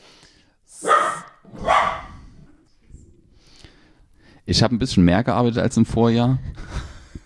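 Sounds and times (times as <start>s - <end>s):
dog barking at tangled cables: 0.8s - 2.2s
speech: 4.5s - 6.6s.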